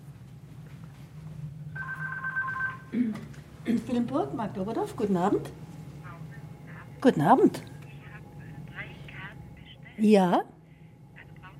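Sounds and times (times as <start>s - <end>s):
low hum: 0.0s - 11.5s
telephone ringing with electronic two-tone trill: 1.8s - 3.0s
speech: 2.9s - 5.6s, 7.0s - 7.7s, 10.0s - 10.5s.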